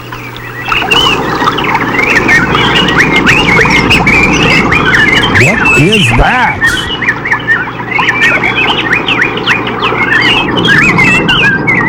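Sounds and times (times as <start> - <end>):
large flock of birds chirping and squawking: 0.0 - 11.8
person speaking: 5.2 - 7.0.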